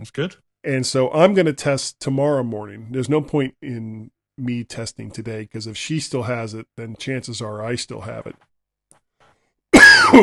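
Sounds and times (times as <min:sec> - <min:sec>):
speech: 0:00.0 - 0:08.5, 0:10.1 - 0:10.2
person coughing: 0:09.8 - 0:10.2.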